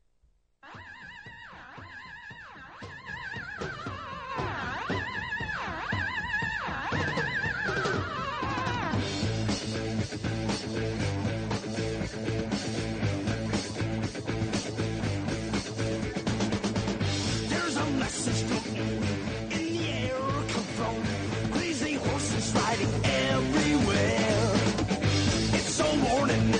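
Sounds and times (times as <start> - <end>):
wailing swooping electronic tones: 0.7 - 9.0
rock band with driving drums and heavy guitars: 3.4 - 26.5.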